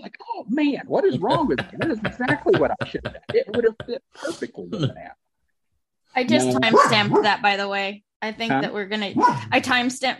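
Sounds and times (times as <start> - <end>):
speech: 0.5 - 5.2, 6.1 - 10.1
laughter: 1.1 - 4.0, 6.3 - 7.2
dog barking: 6.6 - 7.4, 9.2 - 9.5.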